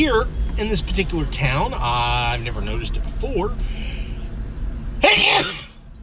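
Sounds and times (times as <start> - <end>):
speech: 0.0 - 4.0, 5.0 - 5.6
person sneezing onto a phone: 5.0 - 5.8.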